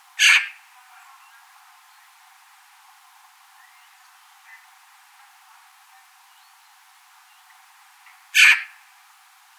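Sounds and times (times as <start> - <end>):
Eurasian magpie grating calls: 0.2 - 0.6, 8.3 - 8.8.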